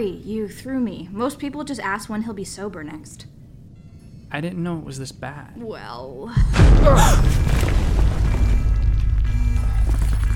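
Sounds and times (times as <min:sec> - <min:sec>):
speech: 0:00.0 - 0:03.4, 0:04.3 - 0:08.0
deep rumbling explosion in the lower plant ring: 0:06.4 - 0:09.8
faint rattling debris: 0:06.6 - 0:10.3.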